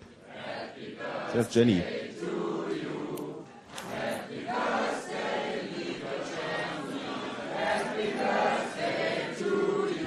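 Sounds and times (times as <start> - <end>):
crowd singing a birthday song live on the radio: 0.0 - 10.0
speech: 1.3 - 2.0.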